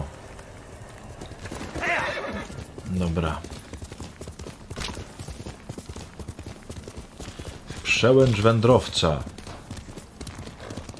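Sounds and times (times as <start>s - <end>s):
horse hooves clip-clopping in a video game: 0.0s - 10.9s
horse neighing in a video game: 1.6s - 2.6s
speech: 2.9s - 3.6s, 8.0s - 9.4s.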